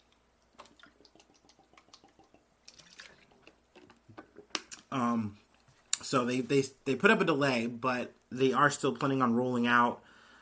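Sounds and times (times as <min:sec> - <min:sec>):
water splashing and dripping as someone gets a drink: 0:00.4 - 0:03.9
speech: 0:04.9 - 0:05.4, 0:06.1 - 0:10.1.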